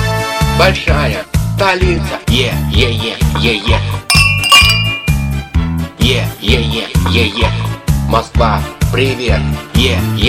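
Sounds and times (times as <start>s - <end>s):
speech: 0.6s - 4.2s, 6.1s - 10.2s
bells ringing: 4.1s - 5.5s.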